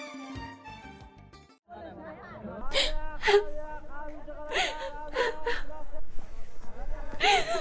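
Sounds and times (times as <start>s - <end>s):
person sobbing with gasping breaths and whimpering cries: 2.6s - 6.0s, 7.1s - 7.5s.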